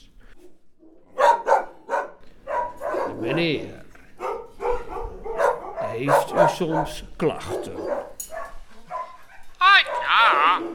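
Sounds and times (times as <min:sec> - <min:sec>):
dogs barking: 0:00.4 - 0:10.7
speech: 0:03.2 - 0:03.8, 0:06.0 - 0:08.0.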